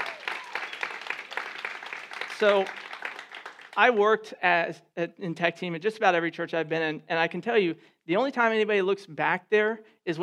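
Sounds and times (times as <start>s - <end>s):
audience applauding: 0.0s - 4.0s
speech: 2.4s - 2.8s, 3.8s - 10.2s.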